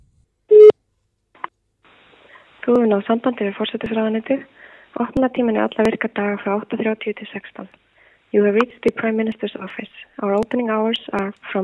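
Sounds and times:
telephone line tone while phoning a government office: 0:00.5 - 0:00.7
speech: 0:02.6 - 0:11.6.

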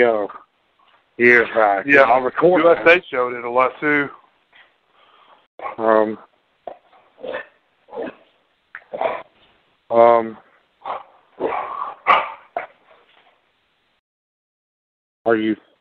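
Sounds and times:
speech: 0:00.0 - 0:00.4, 0:01.2 - 0:04.2, 0:05.7 - 0:06.3, 0:07.2 - 0:08.2, 0:09.9 - 0:11.0, 0:15.2 - 0:15.7
dog grunting yips: 0:06.7 - 0:08.3, 0:10.8 - 0:13.0
dog barking while tugging at pants: 0:10.9 - 0:13.0.

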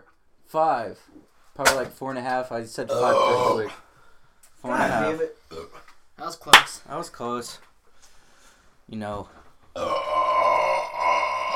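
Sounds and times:
speech: 0:00.5 - 0:03.8, 0:04.6 - 0:07.7, 0:08.9 - 0:10.0
long loud throaty burp: 0:02.9 - 0:03.8, 0:09.8 - 0:11.5.

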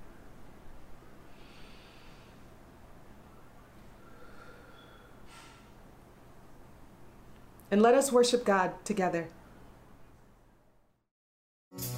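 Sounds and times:
soft airy breaths during a worship service: 0:01.0 - 0:05.9
speech: 0:07.7 - 0:09.4.

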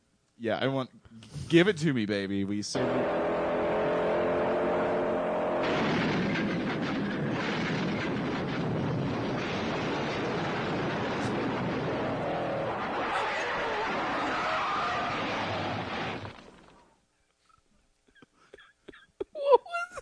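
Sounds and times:
speech: 0:00.4 - 0:03.2
steady engine-like tone: 0:02.8 - 0:07.5
car crash sound effect: 0:02.8 - 0:16.9.

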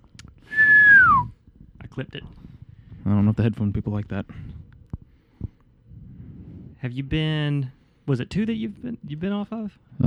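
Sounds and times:
person whistling into the microphone: 0:00.5 - 0:01.3
speech: 0:02.0 - 0:02.5, 0:03.1 - 0:04.5, 0:06.8 - 0:10.0.

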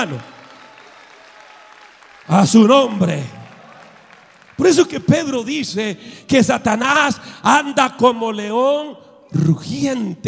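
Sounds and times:
speech: 0:00.0 - 0:00.3, 0:02.3 - 0:03.4, 0:04.6 - 0:10.2
sustained applause from a large audience: 0:00.0 - 0:05.4.

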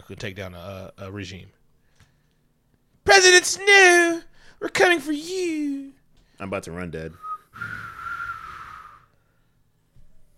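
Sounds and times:
speech: 0:00.1 - 0:01.6, 0:03.1 - 0:07.9
person whistling a short tune: 0:07.2 - 0:09.1.

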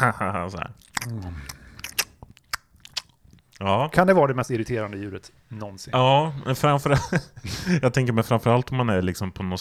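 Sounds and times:
speech: 0:00.0 - 0:01.6, 0:03.6 - 0:09.5
wet chewing with crunchy bites: 0:00.7 - 0:04.0
sharp lip smacks: 0:00.8 - 0:03.7
laughter: 0:06.8 - 0:07.8.

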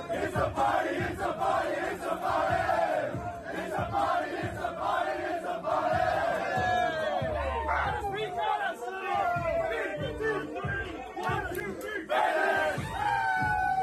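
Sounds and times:
speech: 0:00.0 - 0:02.4
team players in a locker room cheering, shouting and singing together: 0:00.0 - 0:13.8
team players whooping in a locker room: 0:06.5 - 0:08.4, 0:12.8 - 0:13.8.

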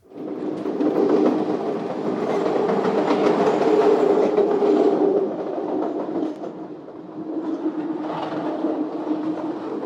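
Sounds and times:
train rumbling on rails: 0:00.0 - 0:09.8
rhythmic clickety-clack of train wheels on rails: 0:00.3 - 0:09.8.

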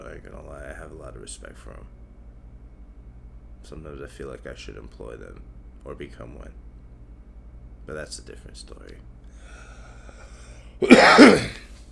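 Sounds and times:
speech: 0:00.2 - 0:02.0, 0:03.6 - 0:06.6, 0:07.9 - 0:09.2
cough into a microphone: 0:10.8 - 0:11.8.

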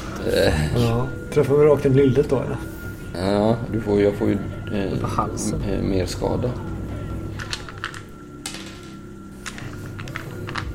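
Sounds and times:
steady low hum: 0:00.0 - 0:10.7
speech: 0:00.2 - 0:06.8
dice clattering across a tabletop: 0:07.4 - 0:10.7.

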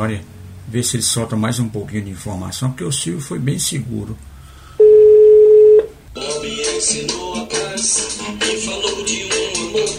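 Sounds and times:
speech: 0:00.0 - 0:04.3, 0:06.8 - 0:09.9
telephone dialing and ringing tone: 0:04.8 - 0:05.9.

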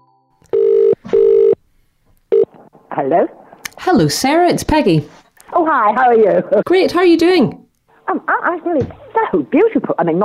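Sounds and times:
telephone ringing tone for a call to a home in rural Galloway: 0:00.5 - 0:01.6
speech: 0:03.0 - 0:07.6, 0:08.2 - 0:10.2.

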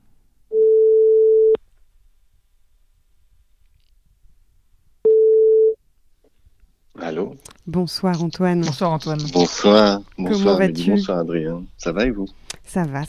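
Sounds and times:
telephone ringback tone of an outgoing call: 0:00.5 - 0:01.6, 0:05.1 - 0:05.8
speech: 0:07.7 - 0:13.0.

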